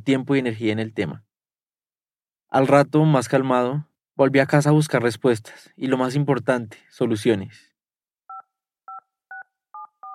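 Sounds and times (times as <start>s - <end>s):
speech: 0.0s - 1.3s, 2.5s - 7.7s
touch-tone keypad beeps dialing a mobile phone number: 8.3s - 10.1s.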